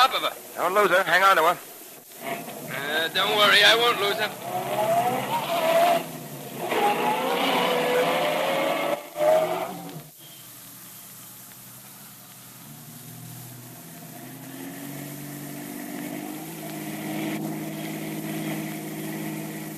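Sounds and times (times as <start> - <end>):
heavy city traffic noise: 0.0 - 19.7
speech: 0.1 - 5.4, 6.7 - 7.3
taxi engine humming and revving in heavy city traffic: 2.1 - 10.2, 12.5 - 19.7.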